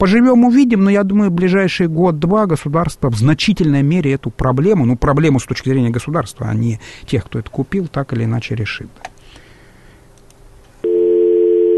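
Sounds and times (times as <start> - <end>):
speech: 0.0 - 9.1
telephone busy tone after a dropped call: 10.8 - 11.7.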